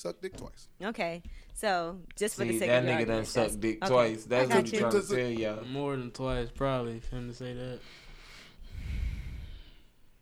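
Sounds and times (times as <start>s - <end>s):
speech: 0.0s - 8.0s
heavy drawn-out breath with a low rushing exhale: 7.8s - 10.1s.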